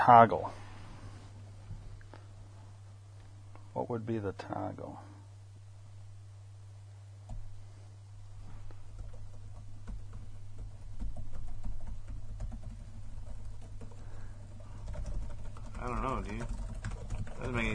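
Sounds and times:
speech: 0.0s - 0.6s, 3.8s - 5.1s, 15.8s - 16.6s, 17.4s - 17.7s
low electrical hum: 0.0s - 17.7s
computer keyboard keys being tapped: 8.9s - 17.7s.

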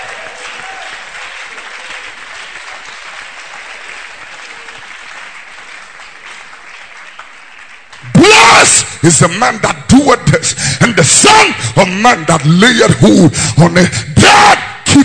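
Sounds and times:
audience clapping: 0.0s - 9.0s
speech: 9.0s - 14.2s.

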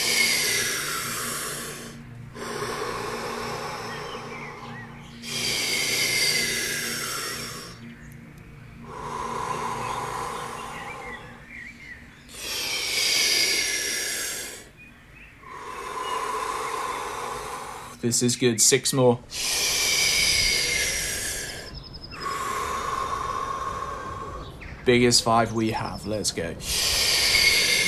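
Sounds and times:
deep forceful breathing during a guided breathing exercise: 0.0s - 18.2s, 19.2s - 27.8s
low steady hum: 0.0s - 27.8s
speech: 18.0s - 19.8s, 24.9s - 26.8s.

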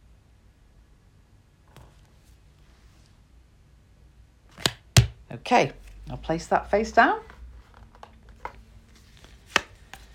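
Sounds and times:
deck of cards being shuffled by hand: 4.5s - 5.2s, 7.6s - 10.1s
sharper snap of cards: 4.5s - 5.2s, 9.3s - 10.1s
speech: 5.4s - 7.3s.

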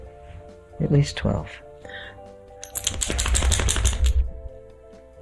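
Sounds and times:
speech: 0.8s - 1.6s
dog shaking its head with ears flapping: 2.8s - 4.3s.

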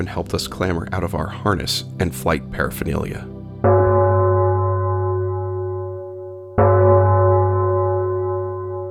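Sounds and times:
speech: 0.0s - 3.3s
large bell ringing in a hangar: 3.6s - 8.8s.

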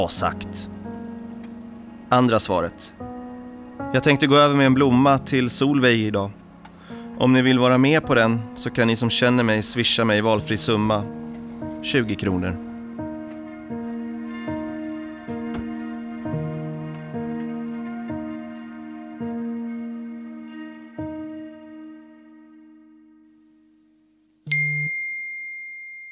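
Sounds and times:
speech: 0.0s - 0.8s, 2.1s - 3.0s, 3.9s - 6.4s, 7.2s - 11.2s, 11.8s - 12.7s
messaging app notification chime: 24.5s - 26.0s
ringing bell-like dings: 24.5s - 26.0s.

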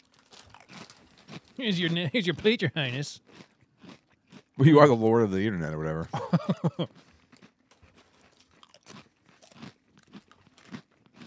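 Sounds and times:
crunching on ruffled potato chips: 0.0s - 5.0s, 6.4s - 11.2s
speech: 1.6s - 3.5s, 4.6s - 7.1s
laughter: 6.0s - 6.9s.

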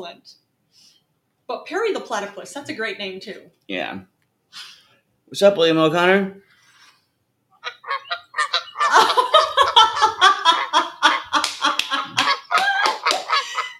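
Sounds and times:
speech: 0.0s - 0.9s, 1.5s - 6.4s
flock of Canada geese honking: 7.6s - 10.8s
laughter: 7.6s - 13.7s.

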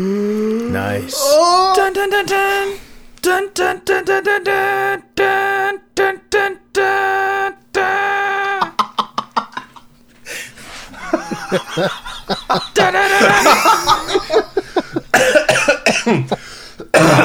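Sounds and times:
speech: 0.8s - 7.2s, 11.1s - 14.6s, 16.0s - 17.2s
person laughing loudly: 1.4s - 5.8s, 6.8s - 17.2s
person coughing harshly: 12.8s - 17.2s.

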